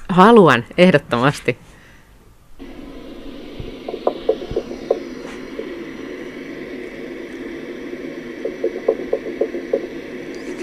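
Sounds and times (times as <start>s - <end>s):
speech: 0.1s - 1.7s
rapid underwater knocking recorded by hydrophone: 2.6s - 10.3s
steady underwater hiss and low rumble: 2.6s - 10.6s.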